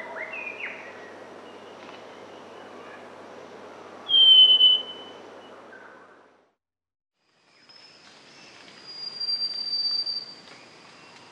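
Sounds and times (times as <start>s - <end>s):
Northern scrub robin whistling in Papua New Guinea: 4.1s - 5.2s, 8.9s - 10.4s.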